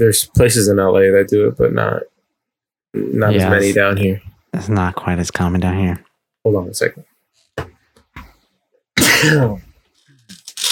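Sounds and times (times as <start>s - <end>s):
speech: 0.0s - 2.1s, 2.9s - 7.7s, 9.2s - 9.7s
person sneezing: 9.0s - 9.6s.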